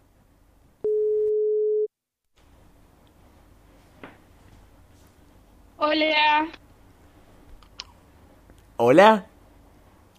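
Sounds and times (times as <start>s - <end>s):
low-pitched telephone tone while a call is being placed: 0.8s - 1.9s
speech: 5.9s - 6.6s, 8.8s - 9.3s.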